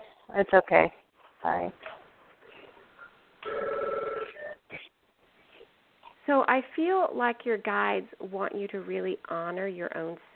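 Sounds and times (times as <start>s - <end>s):
speech: 0.3s - 1.9s, 6.3s - 10.3s
phone ringing with an electronic trill: 3.4s - 4.6s.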